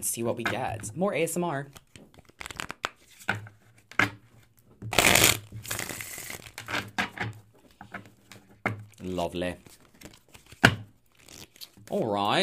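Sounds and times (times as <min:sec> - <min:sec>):
speech: 0:00.0 - 0:01.8, 0:09.1 - 0:09.8, 0:11.9 - 0:12.4
oracle cards being shuffled and handled: 0:01.7 - 0:04.1, 0:04.9 - 0:07.0, 0:07.6 - 0:12.1.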